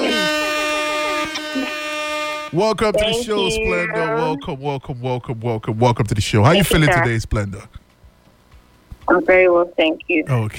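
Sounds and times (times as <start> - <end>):
air horn blast: 0.0 - 3.6
speech: 2.5 - 7.8, 9.1 - 10.5.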